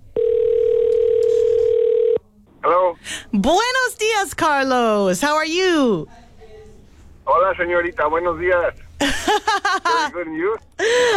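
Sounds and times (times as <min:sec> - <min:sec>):
telephone ringback tone on an outgoing call: 0:00.2 - 0:02.2
speech: 0:03.3 - 0:06.2, 0:07.3 - 0:11.1
laughter: 0:09.0 - 0:10.2.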